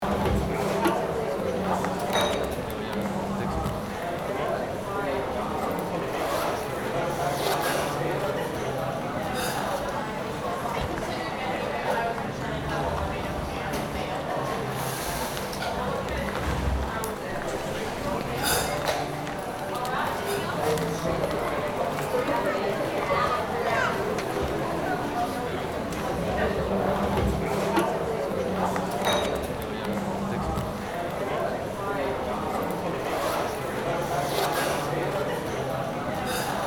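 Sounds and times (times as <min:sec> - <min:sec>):
voices walla in an indoor station cafe restaurant: 0:00.0 - 0:36.6.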